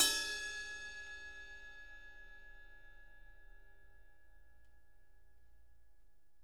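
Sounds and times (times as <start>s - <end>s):
ride cymbal bell in F: 0.0s - 3.3s.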